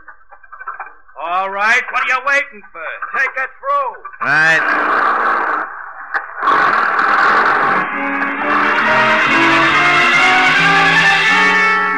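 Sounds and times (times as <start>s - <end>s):
speech: 1.3s - 5.4s
truck engine revving as the vehicle accelerates and swings around: 6.4s - 11.9s.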